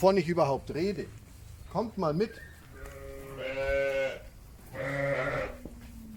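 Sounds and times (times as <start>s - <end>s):
speech: 0.0s - 2.5s
sheep bleating in an excited flock: 2.8s - 5.6s.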